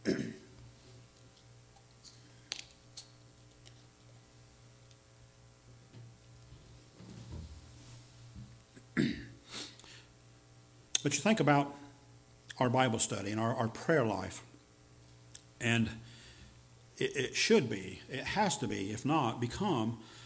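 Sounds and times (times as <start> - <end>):
short coughs: 0.0 - 0.5, 8.8 - 9.4
throat-clearing bursts: 0.0 - 0.5, 8.8 - 9.4
low steady hum: 0.0 - 20.2
speech: 11.0 - 11.8, 12.6 - 14.5, 15.6 - 16.1, 17.0 - 20.2.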